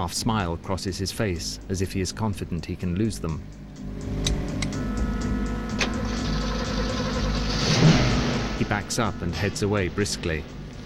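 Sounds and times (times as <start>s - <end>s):
speech: 0.0s - 4.3s, 8.6s - 10.6s
Mustang engine idling at a car wash lot: 0.2s - 10.8s
car ignition clicks: 4.2s - 4.8s, 5.7s - 6.6s.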